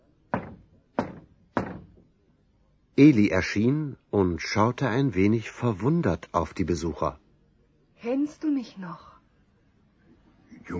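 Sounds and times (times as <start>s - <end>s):
firm knocking on a wooden gate: 0.3s - 2.1s
speech: 3.0s - 7.2s, 8.0s - 9.1s.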